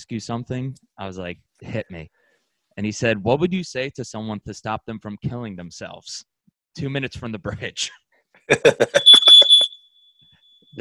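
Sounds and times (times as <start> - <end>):
speech: 0.0 - 2.2, 2.8 - 9.5
laughter: 8.5 - 9.5
smoke alarm shrill steady tone: 9.0 - 10.7.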